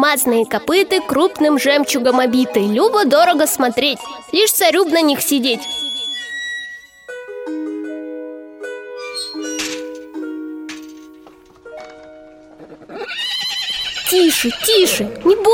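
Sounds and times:
speech: 0.1 - 5.9, 14.1 - 15.5
horses squealing shrilly: 5.4 - 7.2, 8.9 - 10.1, 11.9 - 15.5
horses snorting: 12.0 - 15.5
horses neighing and whinnying: 12.3 - 15.5.

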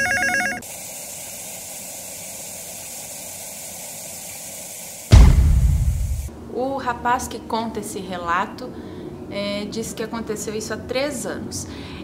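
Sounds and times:
telephone bell ringing: 0.0 - 0.6
steady hiss: 0.6 - 6.3
sudden loud rumbling noise: 5.1 - 6.3
speech: 6.8 - 12.0.

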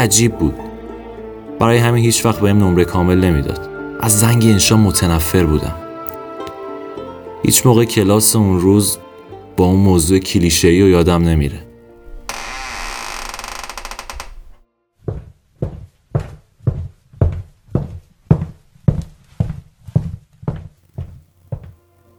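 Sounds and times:
speech: 0.0 - 0.6, 1.6 - 5.8, 7.4 - 11.7
heavy footsteps entering a classroom: 12.0 - 21.8.

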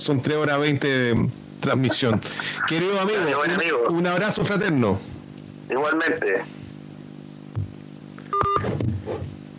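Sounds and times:
speech: 0.0 - 6.6
laughter: 1.6 - 3.3
electronic telephone tone of an incoming call: 8.3 - 8.7.

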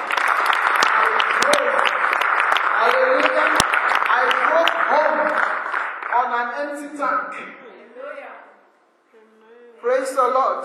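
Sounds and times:
congregation clapping steadily and loudly: 0.0 - 6.6
speech: 6.7 - 7.6.

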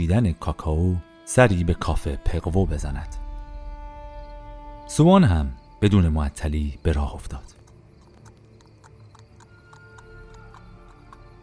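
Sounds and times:
speech: 0.0 - 3.2, 4.9 - 7.6
horse-drawn carriage hooves clip-clopping: 7.2 - 11.4.

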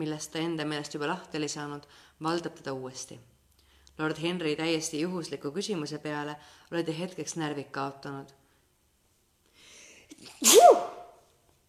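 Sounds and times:
speech: 0.0 - 3.3, 4.0 - 8.4, 10.2 - 11.0
person sneezing: 10.1 - 11.2.

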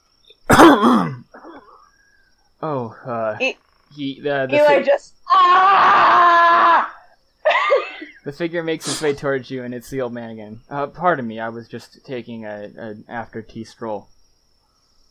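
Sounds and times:
person acting out harsh hacking coughs: 0.5 - 1.7
throat clearing: 0.5 - 1.7
speech: 2.6 - 6.8, 8.2 - 14.1.

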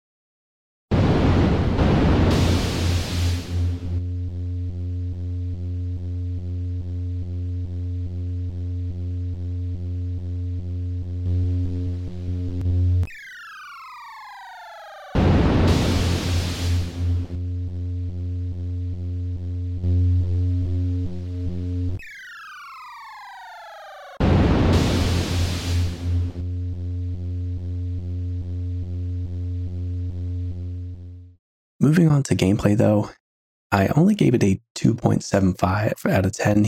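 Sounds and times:
buzzing lightsaber hum from an arcade game: 1.7 - 31.2
descending electronic zaps: 12.5 - 17.4, 21.9 - 26.4
speech: 31.9 - 36.6.

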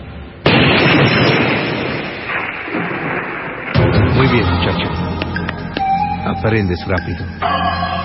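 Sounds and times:
single gunshot fired during hitman training in Medellín: 0.4 - 5.0
speech: 4.3 - 5.2, 6.2 - 7.9.

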